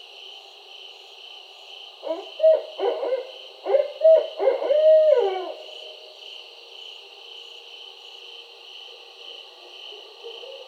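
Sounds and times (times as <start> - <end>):
barred owl giving throaty hoots: 2.0 - 5.7.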